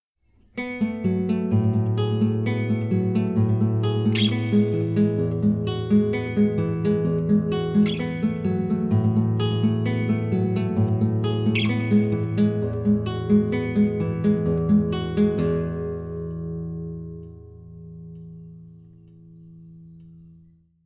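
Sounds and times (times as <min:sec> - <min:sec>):
guitar played with right hand: 0:00.4 - 0:20.6.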